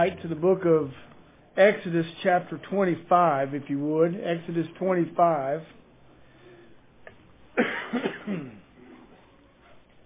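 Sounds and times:
speech: 0.0 - 5.8
harsh chesty coughs: 7.6 - 8.7.

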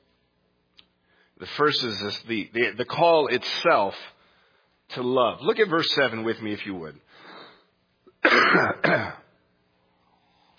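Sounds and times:
speech: 1.4 - 4.1, 4.9 - 7.0, 8.4 - 9.2
harsh coughs: 8.2 - 9.4.

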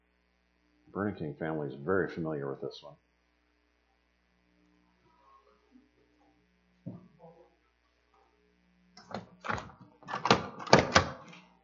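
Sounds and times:
speech: 0.9 - 3.0
door creaking on its hinges: 9.0 - 11.4.

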